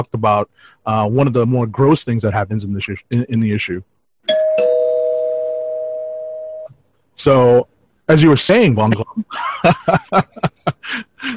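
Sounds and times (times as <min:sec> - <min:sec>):
speech: 0:00.0 - 0:04.7, 0:07.2 - 0:11.3
bright spoiler warning bell ringing: 0:04.3 - 0:06.7
laughter: 0:08.9 - 0:11.3.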